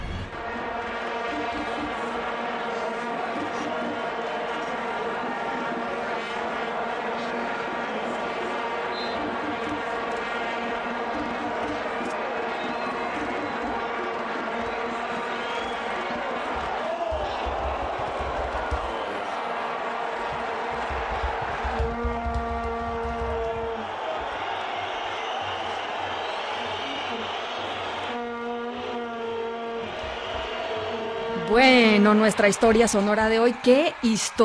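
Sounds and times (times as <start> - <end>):
football stadium crowd roaring: 0.1 - 34.4
whistles in a football stadium: 8.9 - 9.2, 12.5 - 13.7, 15.1 - 16.0, 24.5 - 28.0
speech: 32.0 - 34.4.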